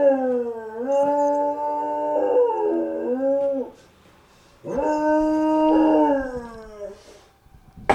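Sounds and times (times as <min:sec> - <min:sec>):
dog howling: 0:00.0 - 0:03.8, 0:04.6 - 0:07.1.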